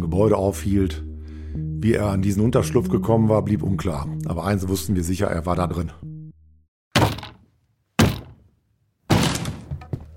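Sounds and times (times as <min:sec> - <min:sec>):
speech: 0:00.0 - 0:06.1
heavy booming impacts forcing a door open: 0:07.0 - 0:07.4, 0:08.0 - 0:08.5, 0:09.1 - 0:10.0
door splintering and rattling as it gives way: 0:09.1 - 0:10.0.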